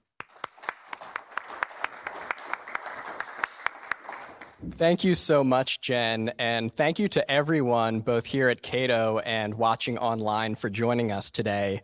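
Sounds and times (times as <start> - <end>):
audience applauding to welcome a panel at a policy discussion event: 0.0 - 4.6
speech: 4.6 - 11.8.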